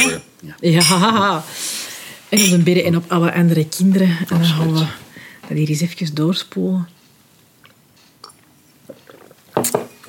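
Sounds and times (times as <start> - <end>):
speech: 0.2 - 1.6, 2.3 - 7.0
people sipping and swallowing water after a toast: 7.4 - 10.0.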